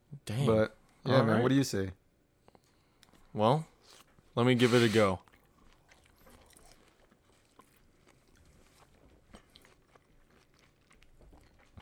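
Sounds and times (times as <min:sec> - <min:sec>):
speech: 0:00.3 - 0:02.0, 0:03.4 - 0:05.3
two people chewing juicy orange slices: 0:02.4 - 0:11.7.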